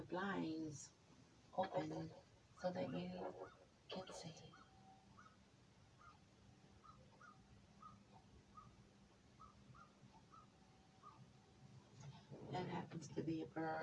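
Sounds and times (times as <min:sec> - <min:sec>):
speech: 0:00.1 - 0:01.0, 0:01.6 - 0:04.6, 0:12.5 - 0:13.8
bird chirping outside in a tree: 0:02.8 - 0:11.9.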